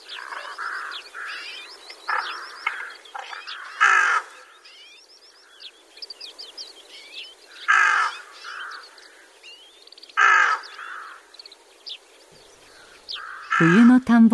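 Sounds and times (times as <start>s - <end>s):
soft bird calls and twittering: 0.0s - 13.9s
rook giving loud harsh caws: 0.1s - 4.7s, 7.5s - 9.5s, 10.1s - 11.4s, 12.6s - 13.9s
speech: 13.6s - 14.3s.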